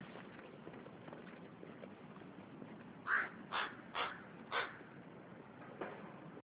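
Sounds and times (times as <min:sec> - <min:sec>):
steady background hiss: 0:00.0 - 0:06.4
bird giving harsh hoarse caw-like notes: 0:03.0 - 0:04.9.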